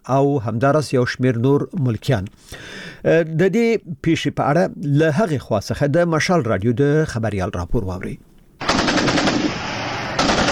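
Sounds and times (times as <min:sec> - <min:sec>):
speech: 0:00.0 - 0:08.3
heavy weapons automatic gunfire during fighting at Kurram on the Pakistan–Afghanistan border: 0:08.6 - 0:10.4.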